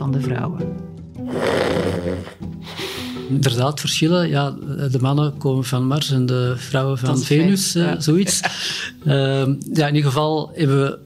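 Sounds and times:
speech: 0.0 - 11.0
loud rattling snoring from a sleeper: 1.3 - 2.4
laughter: 8.0 - 9.0.

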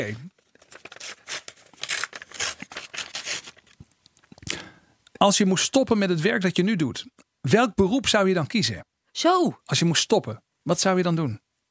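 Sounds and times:
speech: 0.0 - 0.3, 5.2 - 11.4
paper envelope holding a quiz question being torn open: 0.0 - 3.8.

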